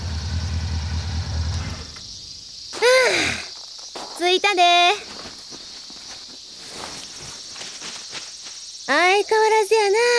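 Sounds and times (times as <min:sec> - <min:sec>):
cicadas singing: 0:00.8 - 0:10.1
faint rustling: 0:02.5 - 0:08.9
speech: 0:04.3 - 0:05.1, 0:08.9 - 0:10.1.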